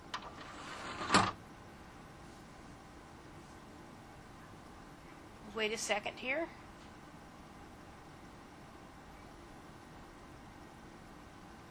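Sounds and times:
CD recorder disc drawer sliding shut: 0.2 - 1.4
speech: 5.6 - 6.6.

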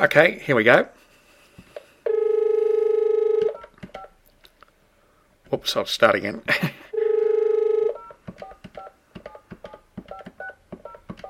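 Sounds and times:
speech: 0.0 - 1.0, 5.5 - 6.8
hands-free desk telephone electronic ring: 2.1 - 4.1, 6.9 - 11.2.

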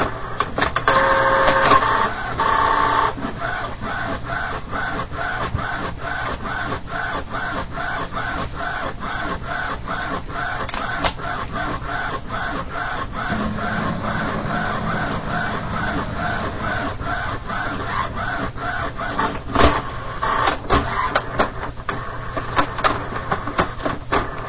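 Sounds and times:
printer scanning a page with a steady mechanical whir: 0.0 - 24.4
printer rapid regular clicking and stepping: 3.2 - 24.4
brief printer electronic tones: 13.3 - 17.7.

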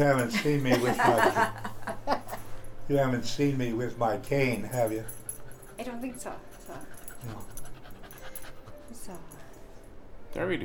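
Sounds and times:
speech: 0.0 - 1.7, 2.9 - 5.2, 5.8 - 7.6, 9.0 - 9.3, 10.3 - 10.6
laughter: 0.3 - 2.4
dog panting rapidly: 4.2 - 9.7.

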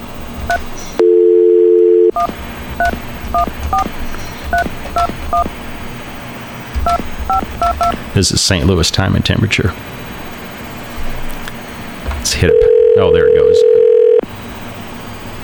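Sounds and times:
speech: 0.5 - 1.0, 8.2 - 10.0, 12.3 - 13.8
telephone keypad DTMF dialing beeps over a VoIP line: 0.5 - 5.5, 6.8 - 8.0
telephone dial tone over a VoIP line: 1.0 - 3.9, 12.4 - 14.2.

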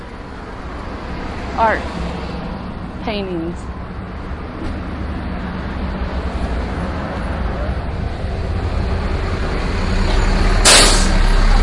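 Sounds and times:
low road traffic rumble: 0.0 - 11.6
speech: 1.6 - 2.0, 3.1 - 3.8
bus air brake hissing: 10.2 - 11.3.

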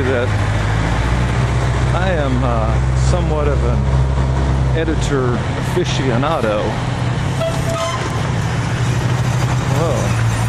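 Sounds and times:
speech: 0.0 - 0.6, 2.0 - 4.0, 4.8 - 6.9
large fire truck engine idling while backing into a fire station: 0.0 - 10.4
horn-like toot: 7.3 - 8.4.

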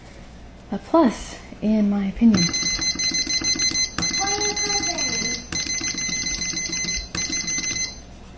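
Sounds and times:
speech: 0.7 - 2.8
faint ringing hum of a kitchen timer dial being turned: 2.2 - 8.3
mechanical kitchen timer ticking: 2.4 - 8.0.

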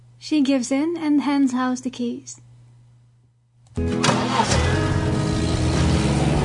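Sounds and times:
speech: 0.3 - 2.4, 3.8 - 4.8
convertible car engine with its top down starting and driving off: 3.8 - 6.4.

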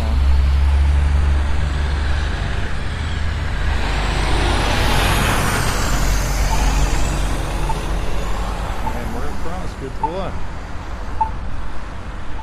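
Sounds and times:
busy street traffic at a street crossing: 0.0 - 12.4
heavy trucks rumbling past at a street crossing: 0.0 - 12.4
accessible crossing locator signal chirps and beeps: 6.4 - 12.4.

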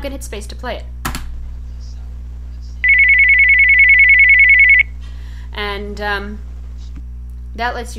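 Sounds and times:
speech: 0.0 - 1.0, 5.6 - 6.5, 7.6 - 7.9
low hum: 0.0 - 7.9
home phone electronic ringtone: 2.8 - 4.9.

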